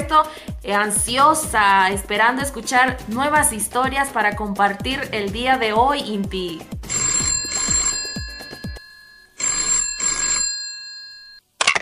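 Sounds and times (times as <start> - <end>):
speech: 0.1 - 6.8
telephone bell ringing with an incoming call to a radio show: 6.9 - 11.4.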